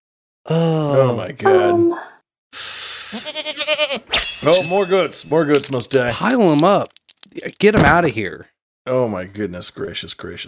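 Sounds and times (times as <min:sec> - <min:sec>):
speech: 0:00.4 - 0:10.4
breathy hiss: 0:02.6 - 0:03.4
goat bleating: 0:03.2 - 0:04.1.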